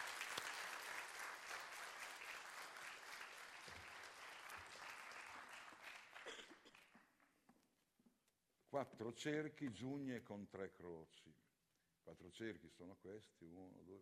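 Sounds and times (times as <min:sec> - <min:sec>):
audience clapping: 0:00.0 - 0:07.4
speech: 0:08.7 - 0:11.5, 0:12.1 - 0:14.0.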